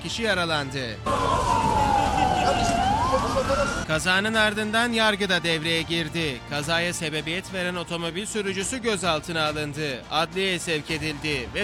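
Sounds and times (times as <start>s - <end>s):
speech: 0.0s - 1.8s, 2.5s - 11.6s
ambulance siren wailing at a crash scene: 1.0s - 3.9s.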